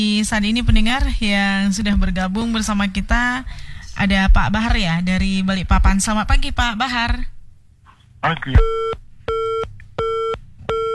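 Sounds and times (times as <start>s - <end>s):
speech: 0.0s - 7.3s, 8.2s - 8.8s
telephone busy tone after a phone call is cut off: 8.6s - 10.9s.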